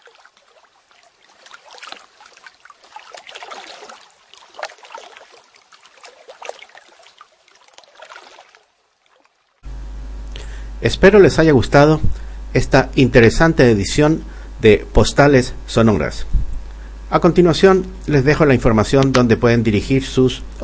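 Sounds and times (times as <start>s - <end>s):
gentle Baltic Sea waves washing and lapping: 0.0s - 9.6s
speech: 10.8s - 16.3s, 17.1s - 20.6s.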